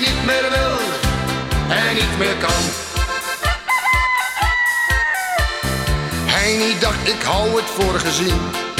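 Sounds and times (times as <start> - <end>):
bright music: 0.0 - 8.7
speech: 1.7 - 2.8, 6.5 - 8.6
steady thumping drum beat: 2.0 - 8.0
rooster crowing: 3.4 - 5.6.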